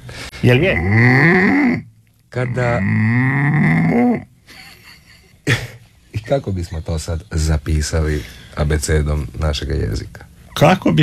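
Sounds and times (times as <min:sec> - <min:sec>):
speech: 0:00.4 - 0:04.3, 0:05.5 - 0:05.7, 0:06.3 - 0:11.0
man imitating a cow mooing: 0:00.6 - 0:04.3
laughter: 0:04.5 - 0:06.4.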